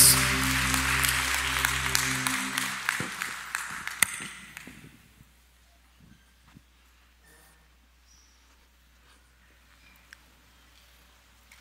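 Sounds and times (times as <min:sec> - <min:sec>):
sustained low musical drone: 0:00.0 - 0:04.5
crowd clapping and applauding in a large room: 0:00.0 - 0:04.9.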